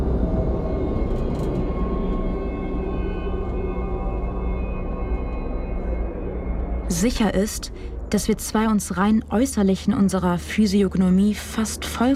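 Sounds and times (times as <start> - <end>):
airplane engines roaring as aircraft take off and land: 0.0 - 12.1
speech: 6.9 - 12.1.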